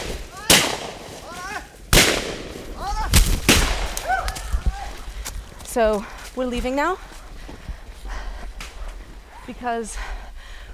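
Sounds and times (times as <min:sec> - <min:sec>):
gunshots as rubber tappers fire while chasing a scout on a motorbike: 0:00.0 - 0:01.2, 0:01.9 - 0:04.0
speech: 0:05.8 - 0:07.6, 0:09.5 - 0:10.1.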